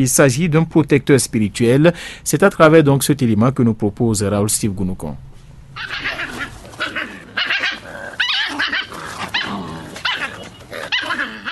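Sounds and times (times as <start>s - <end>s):
speech: 0.0s - 6.2s
dog barking, growling and snarling: 5.8s - 11.4s.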